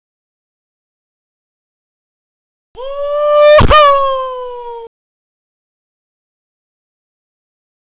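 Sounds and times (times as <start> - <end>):
person whooping: 2.8 - 4.9.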